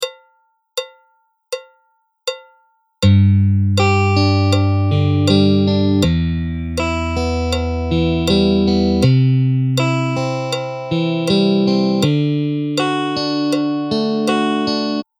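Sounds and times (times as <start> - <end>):
guitar arpeggio phrase: 3.1 - 15.0.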